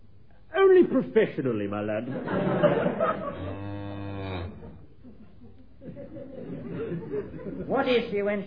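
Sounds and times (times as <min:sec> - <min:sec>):
speech: 0:00.8 - 0:03.6, 0:07.2 - 0:08.4
laughter: 0:02.0 - 0:03.6, 0:04.6 - 0:08.0
cow giving a drawn-out low moo: 0:03.2 - 0:04.8.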